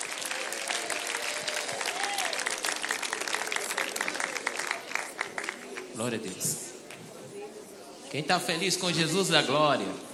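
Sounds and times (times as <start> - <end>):
large crowd applauding loudly: 0.0 - 6.4
speech: 6.0 - 6.7, 8.1 - 10.1.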